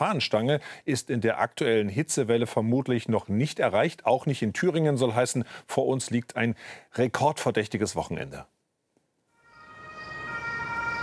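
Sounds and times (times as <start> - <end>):
speech: 0.0 - 8.5
ambulance siren as vehicle pulls up to a hospital emergency department in Sömmerda: 9.4 - 11.0.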